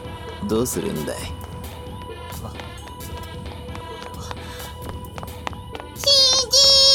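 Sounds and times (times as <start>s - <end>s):
speech: 0.4s - 1.4s
footsteps tapping at a walking pace: 1.4s - 6.8s.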